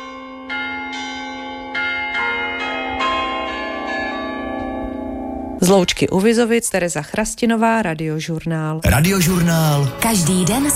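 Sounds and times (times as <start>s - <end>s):
bells of a small rural chapel ringing in Loučka near Vizovice: 0.0s - 6.5s
speech: 5.6s - 10.7s.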